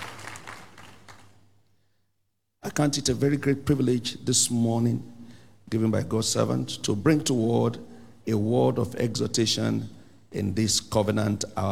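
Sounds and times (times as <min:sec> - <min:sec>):
crowd of many people clapping: 0:00.0 - 0:01.5
speech: 0:02.8 - 0:11.6.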